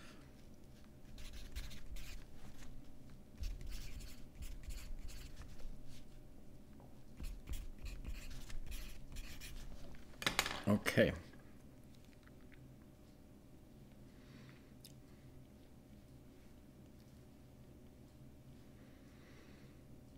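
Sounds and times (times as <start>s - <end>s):
faint steady hum: 0.0s - 20.1s
pencil scratching across paper in quick strokes: 1.1s - 2.3s, 3.4s - 6.0s, 7.2s - 9.7s
speech: 11.0s - 11.3s.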